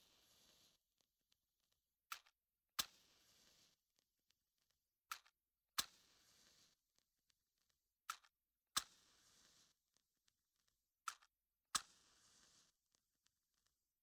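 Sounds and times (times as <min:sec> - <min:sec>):
match striking recorded binaurally: 0:00.2 - 0:00.8, 0:02.2 - 0:03.8, 0:06.3 - 0:06.8, 0:08.8 - 0:09.8, 0:11.2 - 0:12.7.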